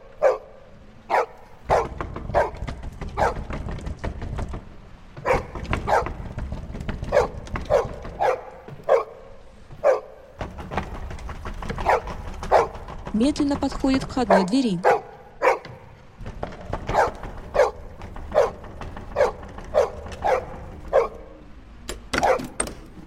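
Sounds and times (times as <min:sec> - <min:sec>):
dog barking behind a front door: 0:00.2 - 0:02.6, 0:03.2 - 0:03.5, 0:05.2 - 0:06.2, 0:07.1 - 0:10.3, 0:11.8 - 0:12.8, 0:14.3 - 0:15.9, 0:16.9 - 0:21.3, 0:22.2 - 0:22.6
speech: 0:13.2 - 0:14.9.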